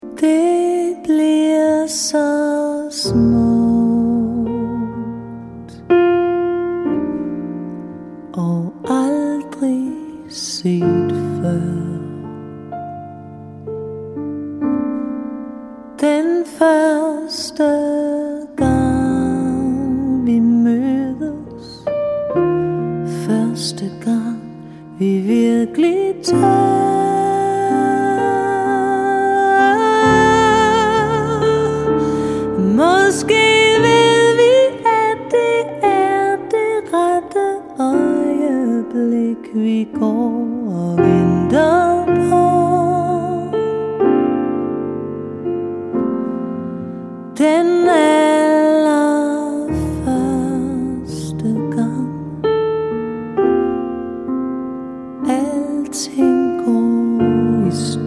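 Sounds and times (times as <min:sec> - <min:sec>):
woman singing: 0:00.0 - 0:05.8, 0:08.4 - 0:12.5, 0:16.0 - 0:21.8, 0:23.0 - 0:43.7, 0:47.4 - 0:52.4, 0:55.2 - 0:58.0
piano: 0:00.0 - 0:58.0.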